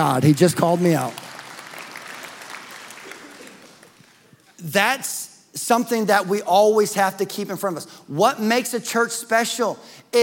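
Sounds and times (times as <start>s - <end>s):
speech: 0.0s - 1.2s, 4.6s - 10.2s
audience clapping: 0.0s - 4.4s.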